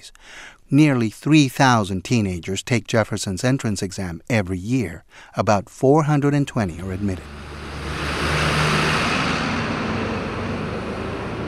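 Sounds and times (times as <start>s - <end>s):
speech: 0.0s - 7.5s
road noise: 6.5s - 11.4s
school bus engine rumbling as it rolls in: 6.6s - 11.4s.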